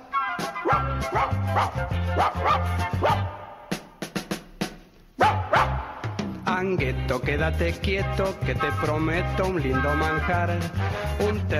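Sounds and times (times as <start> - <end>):
speech: 0.4 - 3.3, 6.6 - 11.5
dog barking furiously: 0.6 - 3.4, 5.2 - 5.9.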